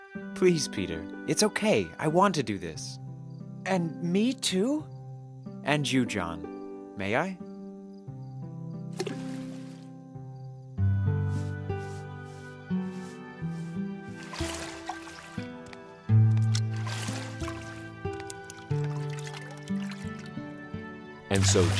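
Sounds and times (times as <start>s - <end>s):
steady sustained music: 0.0s - 21.7s
speech: 0.4s - 3.0s, 3.6s - 4.9s, 5.6s - 7.4s, 21.4s - 21.7s
water splashing and trickling as feet are washed in a large bowl: 9.0s - 9.8s, 12.9s - 20.6s, 21.3s - 21.7s.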